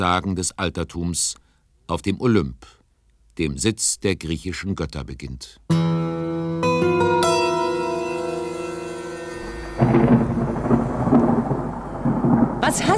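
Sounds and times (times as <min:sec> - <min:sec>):
speech: 0:00.0 - 0:02.8, 0:03.4 - 0:06.1
bright plucked accents: 0:05.7 - 0:09.9
sustained musical tones: 0:05.8 - 0:12.0
deep loud rumble of thunder: 0:09.4 - 0:12.9.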